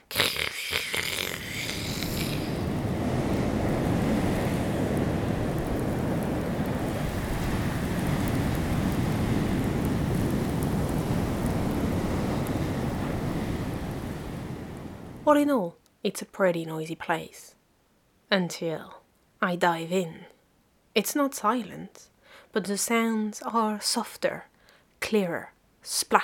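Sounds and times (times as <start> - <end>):
wind blowing across a sandy beach by the sea: 0.6 - 15.3
speech: 15.3 - 17.6, 18.3 - 20.3, 21.0 - 26.2.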